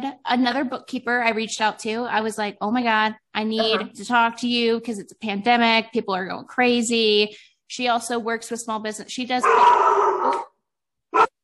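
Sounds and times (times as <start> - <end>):
speech: 0.0 - 10.5
female dog barking: 9.4 - 10.5, 11.1 - 11.4.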